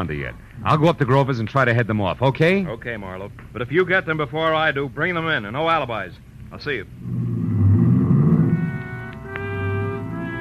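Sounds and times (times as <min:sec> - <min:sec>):
speech: 0:00.0 - 0:07.2
car engine revving as the car is driven off fast: 0:06.9 - 0:10.3.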